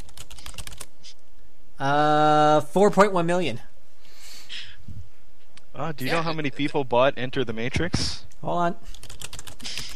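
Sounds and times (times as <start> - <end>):
typing on a computer keyboard: 0.0 - 0.9, 8.9 - 9.9
speech: 1.8 - 3.7, 5.8 - 9.0.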